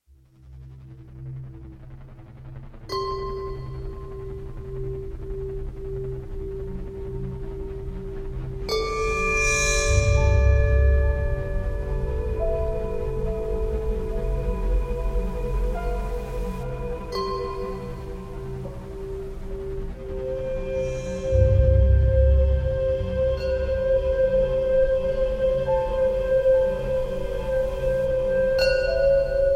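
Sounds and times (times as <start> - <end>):
ambient Tibetan singing bowls: 8.7 - 29.5.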